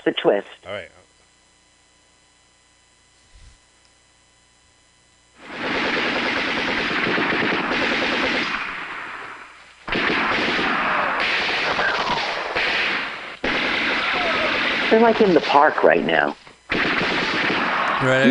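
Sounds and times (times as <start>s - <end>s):
speech: 0.0s - 1.0s, 14.9s - 16.5s, 18.0s - 18.2s
rapid automatic gunfire from a video scene set in a park: 5.4s - 18.1s.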